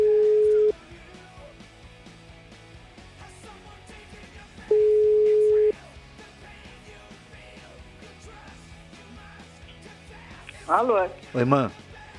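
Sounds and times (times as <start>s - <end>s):
telephone ringback tone on an unanswered call: 0.0s - 0.7s, 4.7s - 5.7s
speech: 10.7s - 11.8s.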